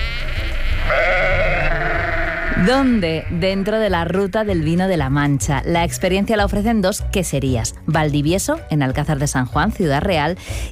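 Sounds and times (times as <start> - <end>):
flock of Manchega sheep bleating: 0.0 - 4.6
speech: 2.6 - 10.7.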